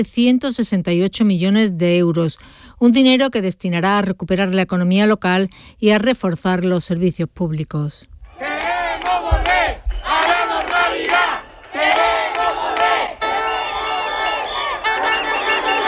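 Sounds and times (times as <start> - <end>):
speech: 0.0 - 8.7
crowd of protesters shouting and chanting in the streets at night: 8.3 - 15.8.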